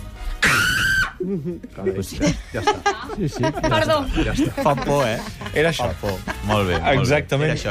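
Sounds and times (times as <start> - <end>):
woman screaming: 0.4 - 1.2
laughter: 1.2 - 7.4
speech: 1.2 - 7.7.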